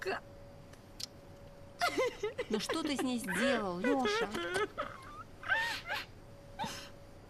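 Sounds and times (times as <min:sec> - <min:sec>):
speech: 0:00.1 - 0:00.3, 0:02.2 - 0:05.1
woman crying in short shaky sobs: 0:01.8 - 0:06.9.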